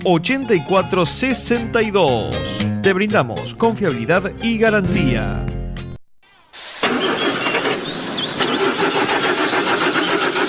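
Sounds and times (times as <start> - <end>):
speech: 0.0 - 5.5
generator engine struggling then starting: 6.6 - 10.4.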